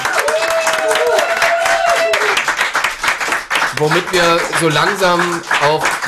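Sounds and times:
audience applause: 0:00.0 - 0:06.0
tonal whoop or whistle: 0:00.1 - 0:02.4
speech: 0:03.8 - 0:06.0.

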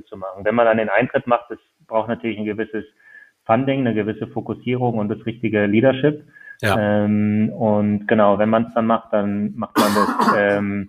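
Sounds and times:
speech: 0:00.1 - 0:10.8
sneeze: 0:09.8 - 0:10.6.

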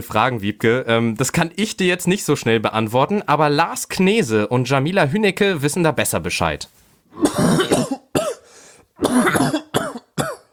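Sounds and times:
speech: 0:00.0 - 0:07.8
person coughing in harsh bursts: 0:07.2 - 0:10.5.

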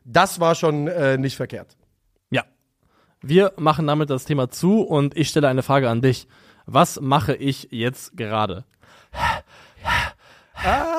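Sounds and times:
speech: 0:00.1 - 0:02.5, 0:03.2 - 0:09.6, 0:10.6 - 0:10.9
man panting: 0:08.8 - 0:10.9.

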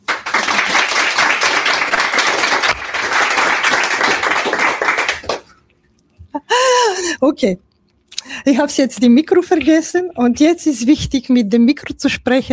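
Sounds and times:
crowd applauding loudly: 0:00.0 - 0:05.5
speech: 0:07.4 - 0:07.7, 0:08.4 - 0:12.5.

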